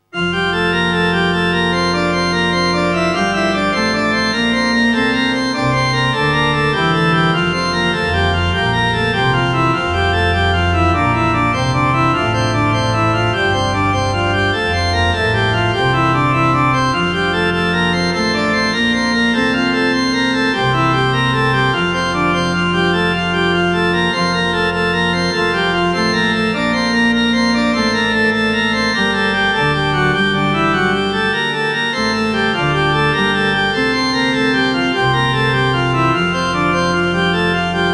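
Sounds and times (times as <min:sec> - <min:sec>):
organ playing a hymn: 0:00.0 - 0:37.9.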